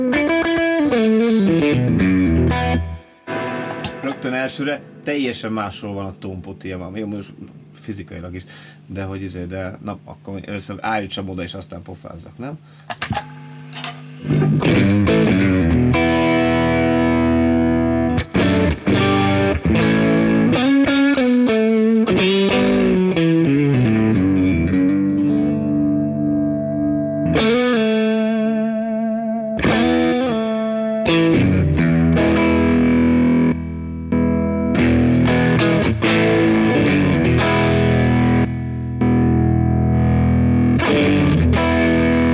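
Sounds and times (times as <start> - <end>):
electric guitar played through a Tube Screamer overdrive pedal: 0.0 - 5.2, 12.7 - 42.3
speech: 4.2 - 13.4.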